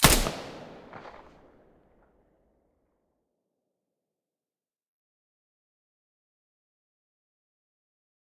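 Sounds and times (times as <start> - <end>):
P90 firing with silencer: 0.0 - 1.8.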